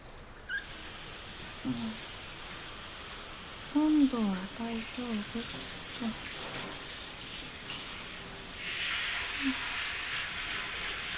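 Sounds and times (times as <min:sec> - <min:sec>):
brief squeaks: 0:00.5 - 0:00.7
shower water running: 0:00.5 - 0:11.1
speech: 0:01.6 - 0:02.1, 0:03.8 - 0:06.6.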